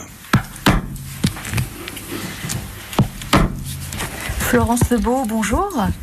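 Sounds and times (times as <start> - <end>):
pricking iron tapping to mark leather for stitching: 0.0 - 1.7, 3.0 - 3.9
quieter rubbing and scraping: 1.1 - 5.8
speech: 4.5 - 6.0.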